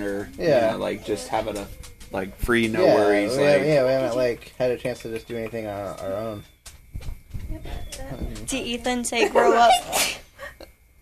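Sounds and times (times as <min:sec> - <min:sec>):
speech: 0:00.2 - 0:06.6, 0:07.5 - 0:10.2
person sneezing: 0:09.8 - 0:10.3.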